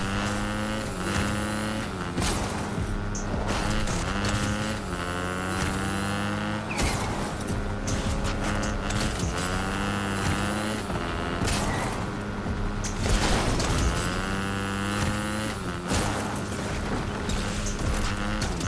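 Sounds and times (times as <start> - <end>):
video game motorcycle engine revving with harmonic whine: 0.0 - 18.6.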